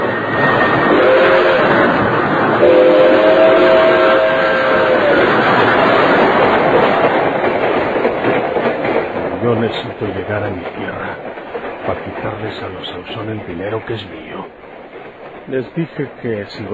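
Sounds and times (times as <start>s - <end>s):
speeding train rumbling: 0.0s - 16.7s
train whistle blasts: 0.9s - 1.8s, 2.6s - 5.2s
speech: 12.5s - 14.6s, 15.5s - 16.7s.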